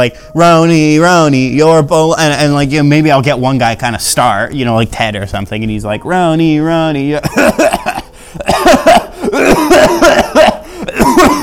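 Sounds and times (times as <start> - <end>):
speech: 0.0 - 10.5
person imitating harsh breathy coughs: 7.2 - 11.4.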